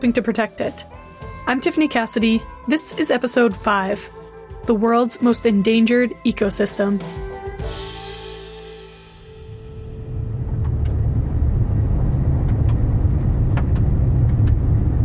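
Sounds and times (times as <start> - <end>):
speech: 0.0 - 7.8
car driving down a bumpy gravel road in southwest Saskatchewan: 10.1 - 15.0.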